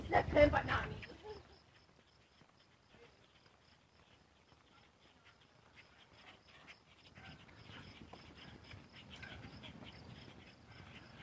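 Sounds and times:
dog being walked panting: 0.0s - 11.2s
speech: 0.1s - 1.0s.

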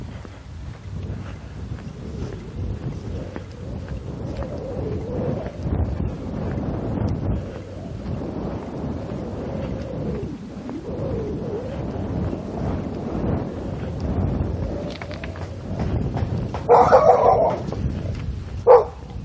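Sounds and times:
steady rumble of wind: 0.0s - 19.2s
dog barking outdoors: 16.7s - 17.7s, 18.6s - 19.1s.

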